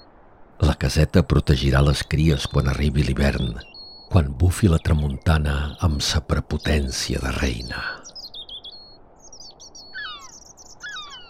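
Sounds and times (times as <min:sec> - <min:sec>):
soft hiss: 0:00.0 - 0:08.2
speech: 0:00.8 - 0:08.0
seagulls crying: 0:09.7 - 0:11.2.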